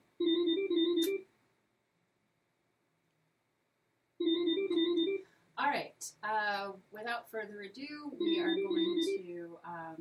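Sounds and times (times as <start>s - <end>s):
phone ringing with an incoming call: 0.2s - 1.3s, 4.2s - 5.3s, 8.1s - 9.3s
speech: 6.0s - 9.9s.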